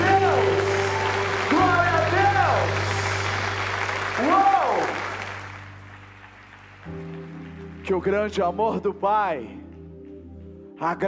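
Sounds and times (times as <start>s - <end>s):
audience applauding loudly: 0.0s - 8.8s
speech: 7.9s - 9.6s, 10.8s - 11.0s.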